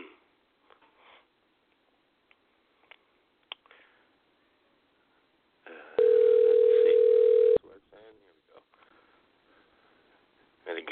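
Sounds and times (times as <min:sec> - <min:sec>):
telephone dial tone: 0:06.0 - 0:07.6.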